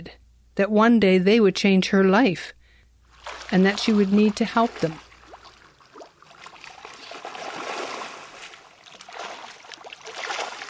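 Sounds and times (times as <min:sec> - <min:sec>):
speech: 0:00.0 - 0:02.6, 0:03.5 - 0:05.0
boat hull swishing and splashing across calm water: 0:03.1 - 0:10.6.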